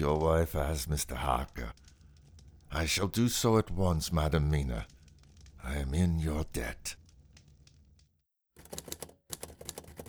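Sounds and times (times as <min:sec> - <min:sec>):
speech: 0:00.0 - 0:01.8, 0:02.7 - 0:05.0, 0:05.6 - 0:07.0
typewriter typing: 0:08.6 - 0:10.0.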